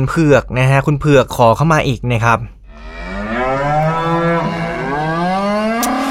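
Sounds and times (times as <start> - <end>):
speech: 0.0 - 3.0
cow mooing: 2.7 - 6.0.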